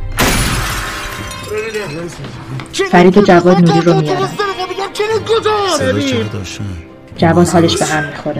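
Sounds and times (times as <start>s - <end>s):
window glass shattering from a gunshot: 0.0s - 2.2s
gunshot: 0.1s - 1.1s
speech: 1.5s - 8.3s.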